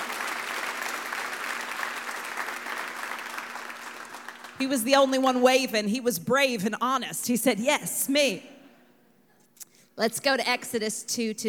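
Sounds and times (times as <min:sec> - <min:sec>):
room full of people applauding: 0:00.0 - 0:04.6
speech: 0:04.6 - 0:08.5, 0:10.0 - 0:11.4.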